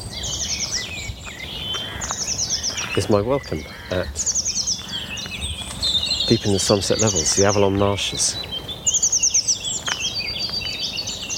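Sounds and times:
blue tits chattering and calling in reed beds: 0.0s - 11.3s
speech: 3.0s - 4.3s, 6.3s - 8.6s.

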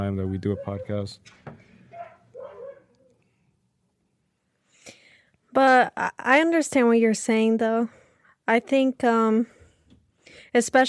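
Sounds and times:
dog barking: 0.0s - 1.0s, 1.9s - 3.2s
speech: 0.0s - 1.5s, 5.5s - 9.6s, 10.3s - 10.8s.

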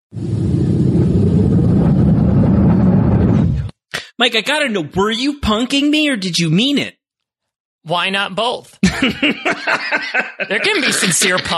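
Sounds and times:
car engine rumbling and revving: 0.1s - 3.7s
speech: 4.2s - 7.0s, 7.8s - 11.5s
laughter: 8.8s - 11.5s.

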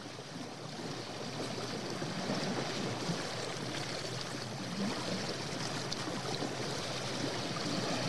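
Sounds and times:
wind: 0.0s - 8.0s
ocean surf: 7.2s - 8.0s.

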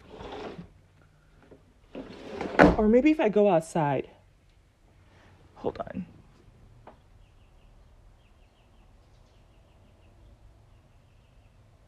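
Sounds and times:
window sliding open with a scraping rattling rush: 0.0s - 0.8s, 1.8s - 3.0s
speech: 2.8s - 4.2s, 5.6s - 6.2s.

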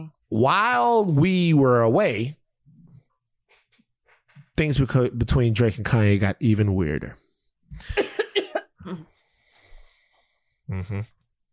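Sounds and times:
speech: 0.0s - 2.4s, 4.6s - 8.1s, 10.7s - 11.2s
coughing into a fist: 7.8s - 9.1s.

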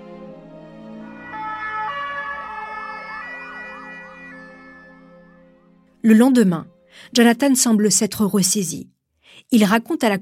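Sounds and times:
ambulance siren wailing: 1.0s - 5.7s
speech: 6.0s - 10.2s.

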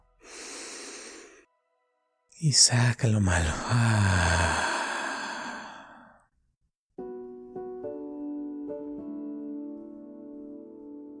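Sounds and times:
deep breath in during a guided breathing exercise: 0.2s - 1.5s, 3.6s - 6.2s
speech: 2.4s - 4.6s.

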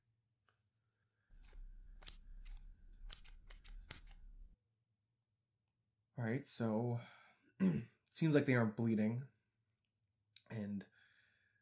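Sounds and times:
scissors cutting off bandages from scabbed-over cuts: 1.4s - 4.4s
speech: 6.2s - 9.4s, 10.5s - 10.9s.

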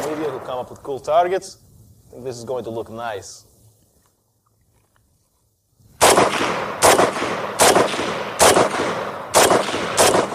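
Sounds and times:
gunshots fired at a bottle: 0.0s - 0.7s, 6.0s - 10.3s
speech: 0.1s - 3.5s.

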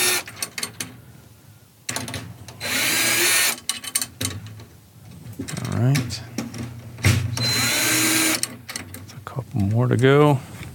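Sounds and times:
battery-powered cordless drill with drum key bit turning drum tension rods: 0.0s - 0.3s, 2.6s - 3.6s, 7.4s - 8.5s
speech: 5.8s - 6.3s, 9.6s - 10.5s.

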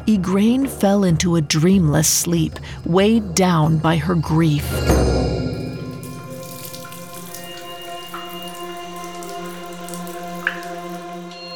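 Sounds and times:
steady hum: 0.0s - 6.4s
speech: 0.1s - 5.2s
water drops falling onto granite: 5.5s - 11.5s.

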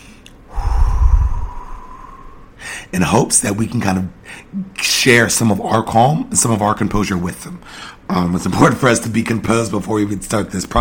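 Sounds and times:
person taking a deep calming breath: 0.5s - 2.9s
speech: 2.9s - 10.7s.

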